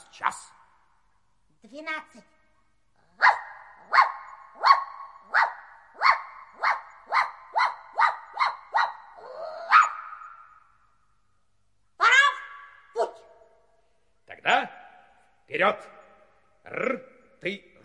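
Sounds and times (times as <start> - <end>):
speech: 0.2 - 0.6, 1.6 - 2.4, 15.5 - 16.0, 16.7 - 17.7
dog whining: 3.2 - 10.5
dog barking: 3.2 - 10.6, 12.0 - 13.4.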